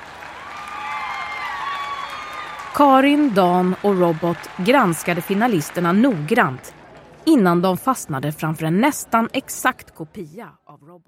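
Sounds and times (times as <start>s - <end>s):
crowd cheering and whooping: 0.0s - 2.8s
audience applauding: 0.0s - 6.8s
speech: 2.8s - 11.0s.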